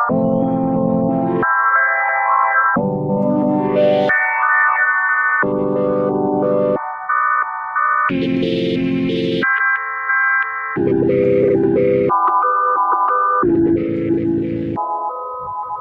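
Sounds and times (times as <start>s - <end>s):
electronic phrase of low chords and sustained tones with heavy reverb: 0.0s - 4.8s, 5.4s - 15.7s.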